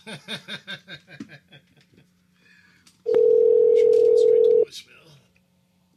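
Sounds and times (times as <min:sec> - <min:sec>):
people laughing: 0:00.0 - 0:02.1
telephone ring tone on an outgoing call: 0:03.1 - 0:04.6.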